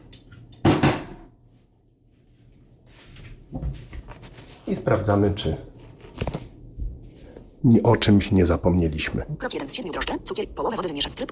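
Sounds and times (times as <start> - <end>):
sugar bowl clattering as it is put away in a kitchen cupboard: 0.6 - 1.3
speech: 3.5 - 3.9, 4.7 - 5.7, 7.6 - 11.3.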